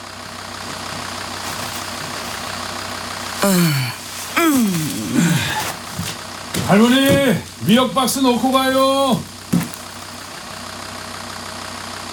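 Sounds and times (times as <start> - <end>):
truck engine idling: 0.0 - 12.1
speech: 3.4 - 3.9, 4.5 - 5.2, 6.7 - 9.3
man calling out short phrases: 3.4 - 5.7, 6.6 - 9.7.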